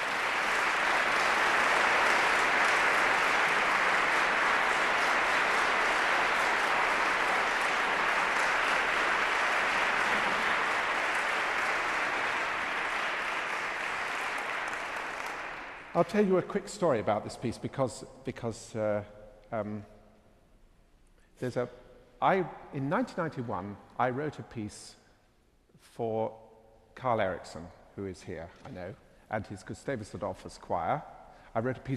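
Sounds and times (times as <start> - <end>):
large audience applause: 0.0 - 16.2
speech: 16.0 - 20.0, 21.4 - 25.0, 25.9 - 26.4, 27.0 - 31.9.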